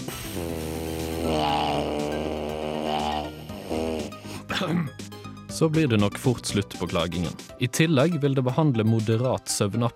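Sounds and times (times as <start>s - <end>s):
didgeridoo drone: 0.0s - 4.2s
speech: 5.6s - 9.9s.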